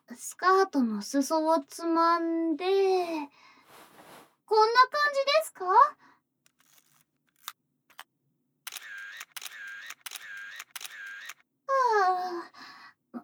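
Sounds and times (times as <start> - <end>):
speech: 0.2 - 3.5, 4.5 - 6.0, 11.7 - 12.7
camera shutter clicking during photo practice: 6.5 - 8.0, 8.7 - 11.4.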